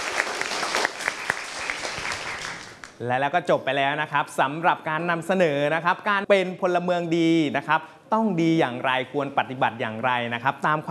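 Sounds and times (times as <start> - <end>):
room full of people clapping in a classroom: 0.0 - 3.0
speech: 3.0 - 10.8.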